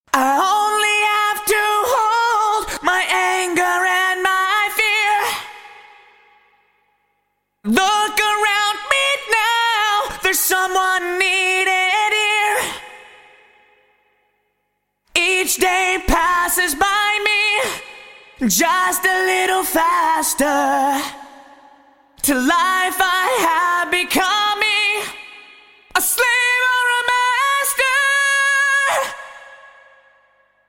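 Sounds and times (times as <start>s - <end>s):
vocal with hall reverb from a Roland SRV-330: 0.0s - 30.6s.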